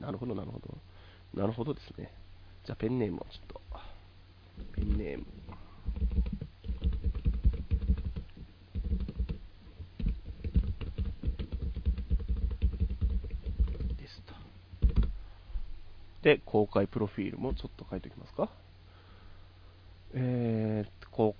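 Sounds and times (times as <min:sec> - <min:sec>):
speech: 0:00.1 - 0:03.6, 0:04.6 - 0:06.4, 0:16.2 - 0:18.6, 0:20.1 - 0:21.3
rapid typing on a computer keyboard: 0:05.8 - 0:14.1, 0:14.8 - 0:15.2.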